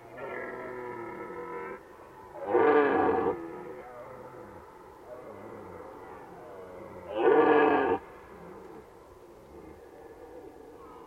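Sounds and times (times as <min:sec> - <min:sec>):
red deer roaring in Valsolda: 0:00.1 - 0:08.8.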